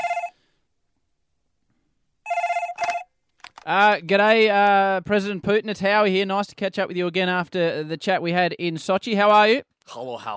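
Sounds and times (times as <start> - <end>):
telephone ringing in short electronic bursts: 0.0 - 0.4, 2.3 - 3.2
speech: 3.7 - 10.3.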